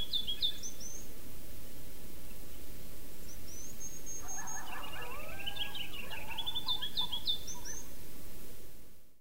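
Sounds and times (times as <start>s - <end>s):
low steady background noise: 0.0s - 9.1s
several coyotes yipping and yelping: 4.0s - 8.1s.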